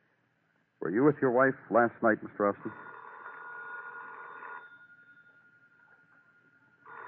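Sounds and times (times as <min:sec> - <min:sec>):
speech: 0:00.9 - 0:02.9
telephone ringing with a thin trill: 0:02.6 - 0:07.0.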